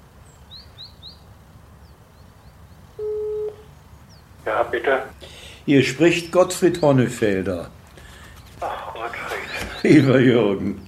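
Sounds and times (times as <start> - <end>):
faint birds chirping and twittering: 0.0 - 10.8
low hum: 0.0 - 10.8
electronic telephone ring: 3.0 - 3.6
speech: 4.5 - 7.8, 9.8 - 10.8.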